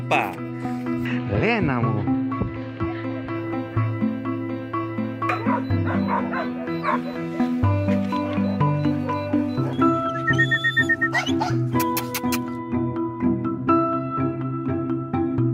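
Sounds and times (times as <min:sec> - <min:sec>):
music: 0:00.0 - 0:15.5
speech: 0:00.1 - 0:02.2, 0:06.2 - 0:07.7
puppies yipping and barking: 0:05.2 - 0:12.6.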